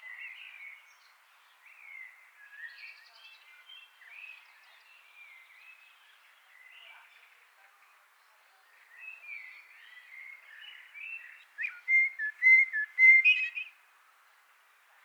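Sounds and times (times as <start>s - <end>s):
Common blackbird Turdus merula song: 11.6s - 13.7s.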